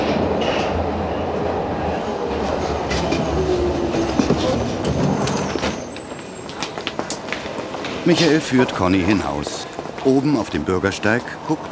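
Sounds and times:
subway train rumbling and arriving at station: 0.0s - 11.7s
low subway train engine drone: 1.8s - 5.0s
speech: 8.1s - 11.7s.

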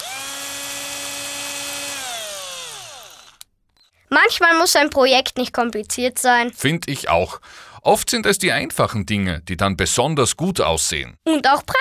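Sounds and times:
cordless drill driving screws with fender washers into wood: 0.0s - 3.4s
speech: 4.2s - 11.8s.

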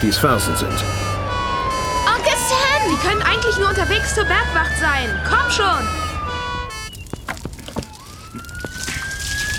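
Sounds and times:
speech: 0.0s - 1.2s, 2.9s - 6.0s
fire engine blaring horn-like tone: 0.0s - 7.1s
clattering street noise: 0.0s - 9.5s
fire engine siren wailing: 0.0s - 9.5s.

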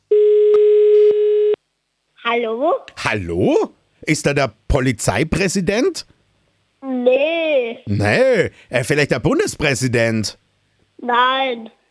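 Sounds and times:
telephone call tone while dialing a number: 0.1s - 1.6s
speech: 2.4s - 6.2s, 6.8s - 10.4s, 11.0s - 11.8s.

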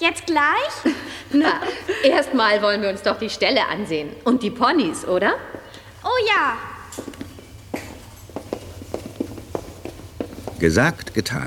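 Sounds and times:
speech: 0.0s - 7.1s, 10.6s - 11.4s
quick running footsteps at a riding stable: 7.0s - 11.4s.

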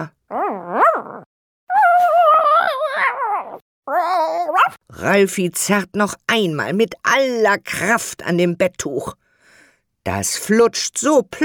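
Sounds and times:
dog growling: 0.0s - 4.8s
speech: 4.9s - 9.2s, 10.0s - 11.4s.

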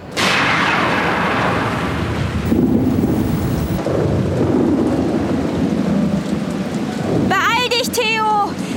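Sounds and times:
steady rain: 0.0s - 8.7s
thunder from a lightning storm: 0.0s - 8.7s.

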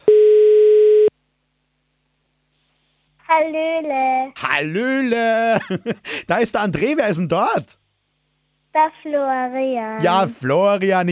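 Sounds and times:
telephone ringing tone: 0.1s - 1.1s
speech: 4.6s - 7.8s, 8.8s - 11.1s
laughter: 5.1s - 6.3s.

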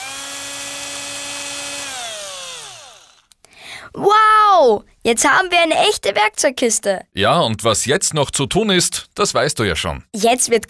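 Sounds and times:
power screwdriver fastening a handle onto a wooden toolbox: 0.0s - 3.4s
speech: 3.9s - 10.6s.

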